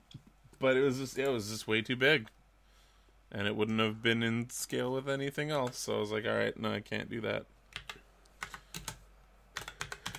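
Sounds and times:
speech: 0.6s - 2.4s, 3.3s - 7.6s
typing on a new keyboard with mechanical key switches: 7.7s - 9.0s, 9.6s - 10.1s.

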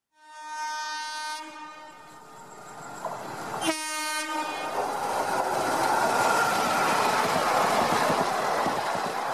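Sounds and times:
train horn blaring: 0.1s - 2.3s, 3.6s - 4.7s
train wheels and carriages rumbling past: 0.3s - 9.3s.

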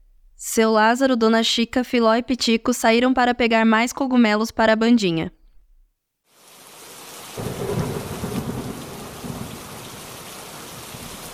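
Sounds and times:
speech: 0.5s - 5.4s
steady hissing rain pouring down: 6.3s - 11.3s
low rumble of thunder: 7.3s - 11.3s.

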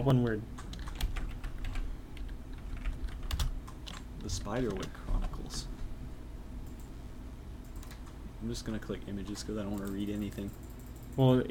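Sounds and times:
speech: 0.0s - 0.6s, 4.2s - 5.7s, 8.4s - 10.6s, 11.2s - 11.4s
typing on a computer keyboard while entering a search: 0.6s - 5.6s, 7.6s - 8.2s, 9.6s - 11.3s.

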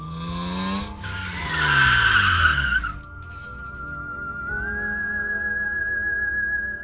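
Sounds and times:
car tires skidding during hard braking: 0.0s - 3.1s
rising car engine whine: 0.0s - 6.8s.

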